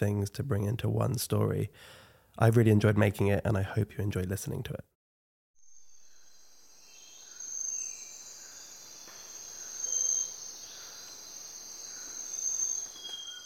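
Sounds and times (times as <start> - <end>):
speech: 0.0 - 4.9
insect chorus in a tropical forest in Ecuador: 5.6 - 13.4.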